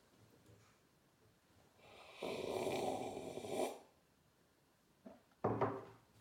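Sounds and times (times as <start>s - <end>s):
person slurping a drink of cocoa: 1.9s - 3.9s.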